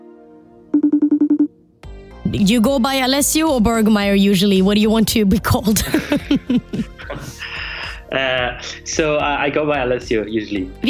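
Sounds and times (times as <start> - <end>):
phone call ringing tone beeps: 0.8 - 1.5
speech: 2.3 - 7.5, 8.1 - 10.8
laughter: 5.8 - 8.6.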